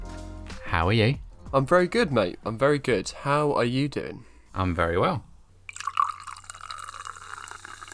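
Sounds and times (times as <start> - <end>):
speech: 0.8 - 5.3
fizzy Amstel beer pouring into a glass: 5.7 - 7.9.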